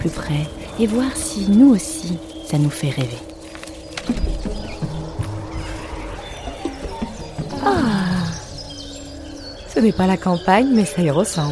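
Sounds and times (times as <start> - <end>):
speech: 0.0 - 3.3, 4.0 - 4.6, 9.8 - 11.5
footsteps crunching on gravel in the garden of a house: 0.0 - 5.5
birds singing in the garden of a house: 0.0 - 11.5.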